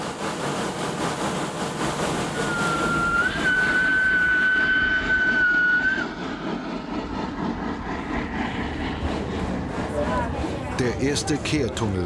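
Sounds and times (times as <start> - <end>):
small mountain-railway locomotive engine roaring on a steep grade at full power: 0.0 - 12.0
sustained high locomotive whistle: 2.4 - 6.1
speech: 10.8 - 12.0.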